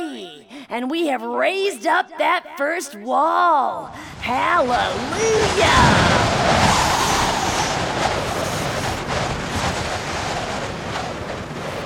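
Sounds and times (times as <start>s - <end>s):
speech: 0.7s - 6.6s
strong wind roaring outdoors: 3.9s - 11.8s.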